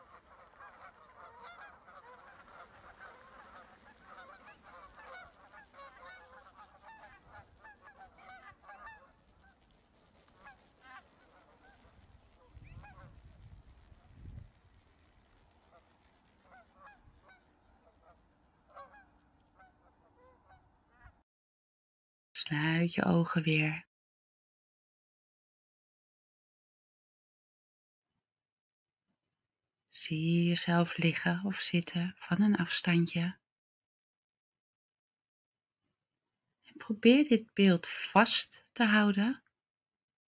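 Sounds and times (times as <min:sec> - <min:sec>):
flock of geese honking while flying overhead: 0:00.0 - 0:13.2, 0:15.6 - 0:21.2
speech: 0:22.5 - 0:23.9, 0:30.1 - 0:33.4, 0:36.8 - 0:39.4.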